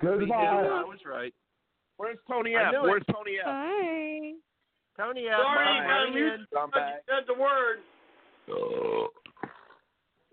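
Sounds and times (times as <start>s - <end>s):
speech: 0.0s - 9.1s
man burping: 8.5s - 9.8s.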